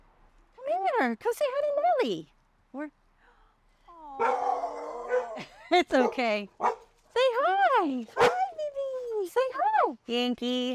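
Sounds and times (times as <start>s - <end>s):
speech: 1.0s - 3.0s, 4.2s - 4.4s, 5.4s - 7.2s, 7.8s - 8.4s, 9.3s - 10.7s
puppy howling: 4.2s - 5.4s
puppy yipping: 8.2s - 8.5s.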